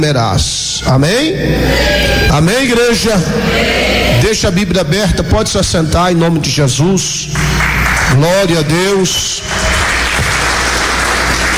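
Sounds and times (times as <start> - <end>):
speech: 0.0 - 9.8
Pentecostal church congregation clapping: 7.3 - 11.5.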